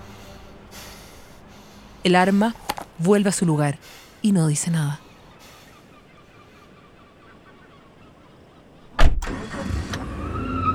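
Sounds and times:
speech: 0:02.0 - 0:05.0
car engine starting and idling: 0:09.2 - 0:10.7.

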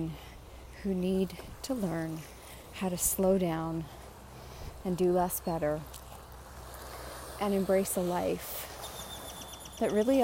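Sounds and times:
speech: 0:00.0 - 0:04.0, 0:04.8 - 0:06.0, 0:07.4 - 0:08.7, 0:09.8 - 0:10.2
ocean waves rolling onto the shore with low rumbling undertone: 0:01.1 - 0:10.2
faint high bird chirps: 0:08.7 - 0:10.2.

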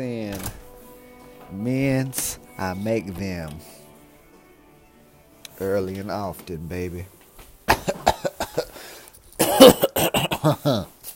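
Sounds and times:
speech: 0:01.6 - 0:03.8, 0:05.6 - 0:07.2, 0:10.4 - 0:11.0
person coughing harshly: 0:07.7 - 0:08.8, 0:09.4 - 0:11.0.

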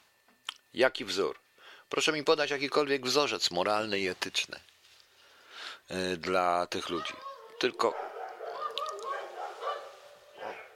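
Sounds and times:
speech: 0:00.7 - 0:04.7, 0:05.6 - 0:08.1
dogs barking outside: 0:07.0 - 0:10.7.

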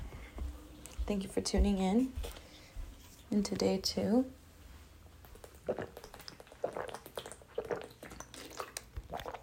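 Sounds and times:
speech: 0:01.1 - 0:02.4, 0:03.3 - 0:04.4, 0:05.7 - 0:06.0
person gulping drinking water: 0:05.2 - 0:09.4
wet swallowing and mouth sounds: 0:05.2 - 0:09.4.

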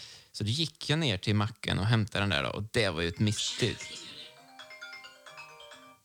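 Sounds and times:
speech: 0:00.4 - 0:04.2
phone ringing with a melodic electronic ringtone: 0:03.1 - 0:06.0.

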